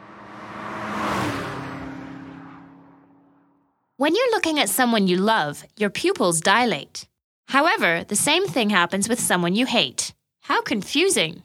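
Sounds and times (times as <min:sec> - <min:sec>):
single car driving past on a road: 0:00.0 - 0:04.0
speech: 0:04.0 - 0:11.4.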